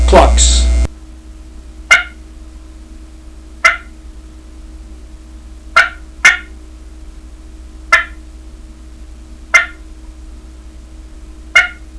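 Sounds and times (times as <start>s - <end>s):
turkey clucking: 1.9s - 2.2s, 3.6s - 4.0s, 5.8s - 6.6s, 7.9s - 8.2s, 9.5s - 9.8s, 11.6s - 11.9s.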